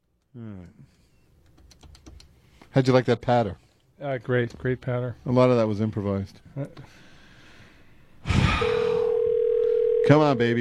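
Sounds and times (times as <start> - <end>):
speech: 0.4 - 1.1, 2.8 - 7.1, 10.1 - 10.5
steady electronic telephone tone in a home: 8.7 - 10.4.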